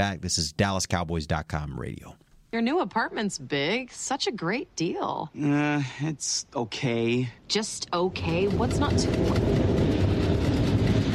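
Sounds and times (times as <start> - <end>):
speech: 0.0 - 9.9
subway train rumbling past below an apartment: 8.2 - 11.1.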